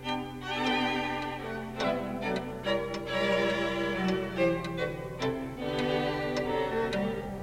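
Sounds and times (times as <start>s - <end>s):
musical clock playing a tinkling melody on the hour: 0.0s - 7.4s.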